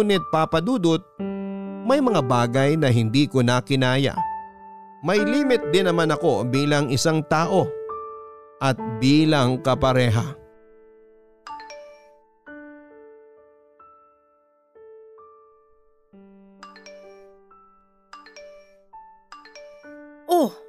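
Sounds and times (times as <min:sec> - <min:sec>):
speech: 0:00.0 - 0:04.3, 0:05.0 - 0:07.8, 0:08.6 - 0:10.4
phone message notification chimes with bright bell-like tones: 0:11.5 - 0:12.2, 0:16.6 - 0:17.4, 0:18.2 - 0:20.5.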